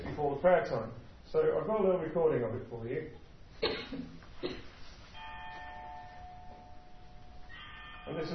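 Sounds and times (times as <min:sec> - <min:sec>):
speech: 0:00.2 - 0:04.6, 0:08.2 - 0:08.3
large outdoor bell rung before prayer time: 0:05.2 - 0:08.3.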